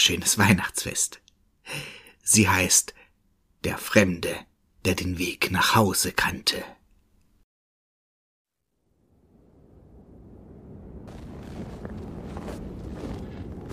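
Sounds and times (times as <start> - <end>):
speech: 0.0 - 3.0, 3.6 - 6.8
deep roaring wind: 9.0 - 13.7.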